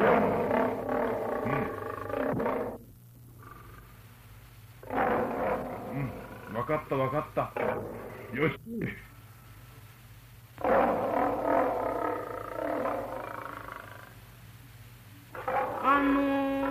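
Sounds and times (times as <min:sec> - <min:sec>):
lion roaring: 0:00.0 - 0:02.8, 0:04.8 - 0:06.8, 0:10.6 - 0:14.1, 0:15.3 - 0:16.7
faint steady low hum: 0:00.0 - 0:16.7
speech: 0:06.7 - 0:09.1.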